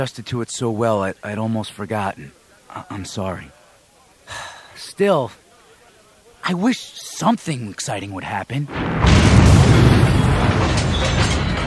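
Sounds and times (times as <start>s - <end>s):
speech: 0.0s - 3.6s, 4.3s - 5.4s, 6.4s - 9.3s
palace exploding in an audio drama: 8.7s - 11.6s.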